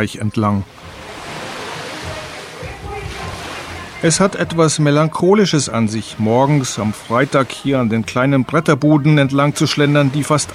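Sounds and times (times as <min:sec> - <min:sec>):
speech: 0:00.0 - 0:00.9, 0:04.0 - 0:10.5
waves crashing against a concrete terrace along a shoreline: 0:00.6 - 0:10.5.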